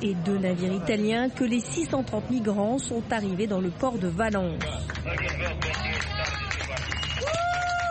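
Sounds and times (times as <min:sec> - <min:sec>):
speech: 0:00.0 - 0:06.1
hubbub of voices: 0:00.0 - 0:07.0
crowd at a port clapping and cheering: 0:04.6 - 0:07.8
bright whistle-like tone: 0:06.9 - 0:07.4.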